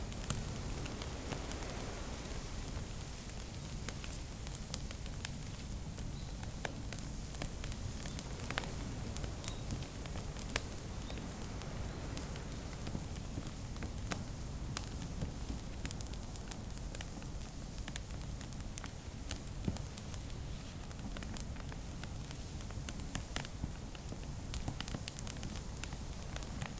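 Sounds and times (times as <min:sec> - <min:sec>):
outdoor fire crackling: 0:00.0 - 0:26.7.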